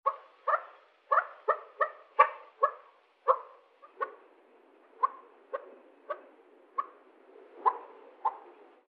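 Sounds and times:
female quail calling: 0.1 - 4.2, 5.0 - 7.0.

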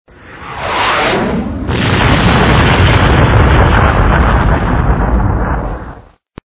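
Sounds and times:
projectile flying past: 0.1 - 2.4
projectile explosion with a crash: 0.3 - 6.2.

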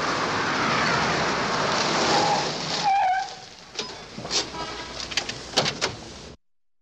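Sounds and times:
car braking to a stop: 0.1 - 4.5
car door opening: 3.8 - 6.0.

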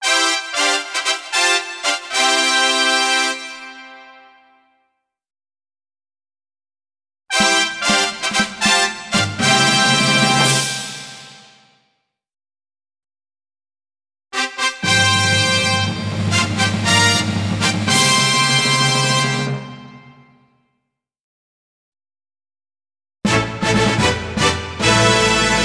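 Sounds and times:
introductory fanfare: 0.0 - 4.2, 7.3 - 11.5, 14.4 - 20.3, 23.3 - 25.6.

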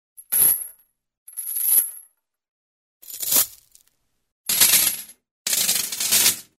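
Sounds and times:
metal chain falling on concrete ground: 0.2 - 2.2, 3.0 - 3.9, 4.5 - 6.5.

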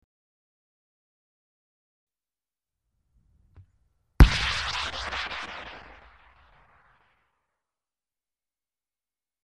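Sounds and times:
rocket launcher: 4.2 - 7.2.

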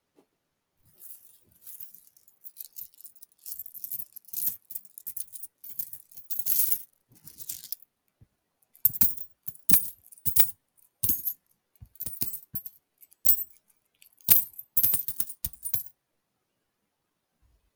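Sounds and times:
coins and kopecks ringing: 8.9 - 11.3, 12.0 - 13.5, 14.3 - 15.9.

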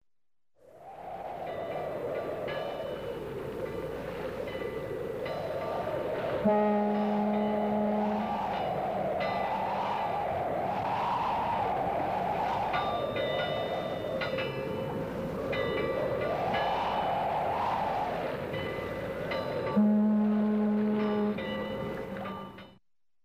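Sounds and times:
strong wind in a port: 0.6 - 22.6
ship horns in a port: 6.3 - 9.6, 19.7 - 22.2.

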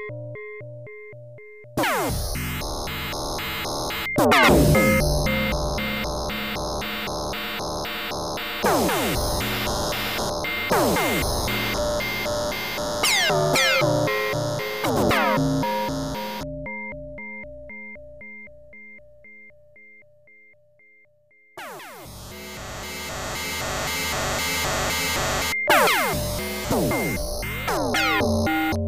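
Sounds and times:
electronic laser sounds: 1.8 - 16.5, 21.6 - 28.8.

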